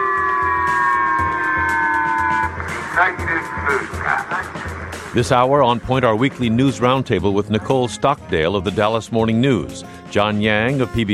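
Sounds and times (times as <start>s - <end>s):
missile warning siren in Japan: 0.0s - 4.9s
person speaking over a noisy public-address background: 2.6s - 11.1s
speech: 3.0s - 4.5s, 5.2s - 11.1s.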